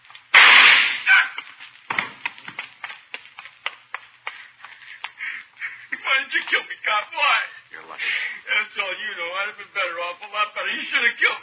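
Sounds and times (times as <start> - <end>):
gunshot during a holdup: 0.3 - 1.2
speech: 6.4 - 11.4.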